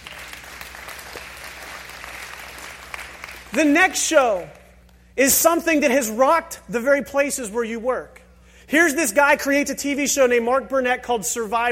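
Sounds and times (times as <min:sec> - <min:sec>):
crowd applause: 0:00.0 - 0:03.6
speech: 0:03.5 - 0:04.6, 0:05.2 - 0:11.7.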